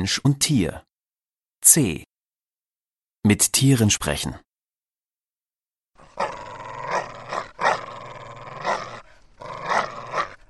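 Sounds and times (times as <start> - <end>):
speech: 0.0 - 0.9, 1.6 - 2.1, 3.2 - 4.4
dog growling and snarling as a warning: 6.0 - 10.4.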